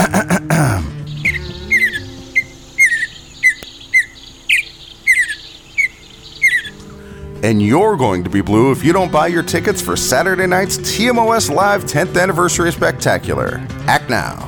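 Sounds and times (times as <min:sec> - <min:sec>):
mountain bluebird singing: 0:00.9 - 0:07.5
clicking noise: 0:03.5 - 0:03.8
speech: 0:07.4 - 0:14.4.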